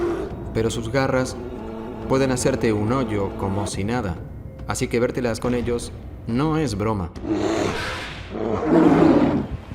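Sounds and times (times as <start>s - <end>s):
brown bear roaring: 0.0s - 3.8s, 7.2s - 9.6s
speech: 0.6s - 9.2s.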